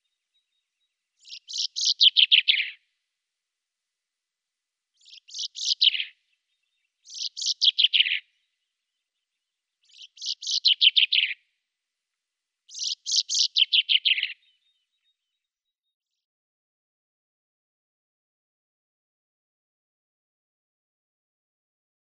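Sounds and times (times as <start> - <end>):
common chaffinch song: 0.0 - 3.5, 4.8 - 11.8, 12.6 - 16.3.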